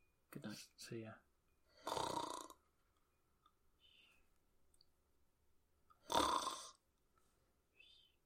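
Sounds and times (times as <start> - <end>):
speech: 0.4 - 1.3
loud harsh rasping snores: 1.7 - 2.6, 6.0 - 6.8
quiet breathing: 2.9 - 4.5, 6.0 - 8.2.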